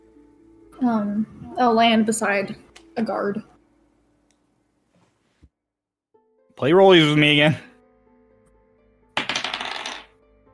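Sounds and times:
speech: 0:00.8 - 0:03.5, 0:06.6 - 0:07.7
small dice hitting a hard surface: 0:09.2 - 0:10.2.

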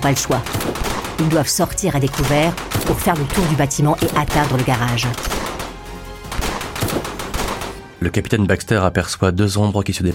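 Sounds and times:
speech: 0:00.0 - 0:05.5, 0:08.0 - 0:10.1
rifle firing a rapid string of shots: 0:00.4 - 0:07.9.

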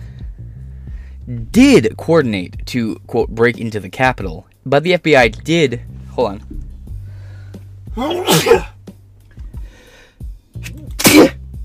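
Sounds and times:
speech: 0:01.3 - 0:06.6, 0:08.0 - 0:08.7
loud sneezes: 0:08.0 - 0:08.8, 0:10.6 - 0:11.4.

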